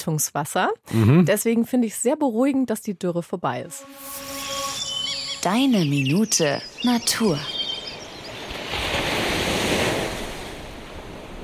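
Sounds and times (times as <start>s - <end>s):
speech: 0.0s - 4.4s, 5.4s - 7.6s
ocean waves breaking on a beach: 5.4s - 11.4s.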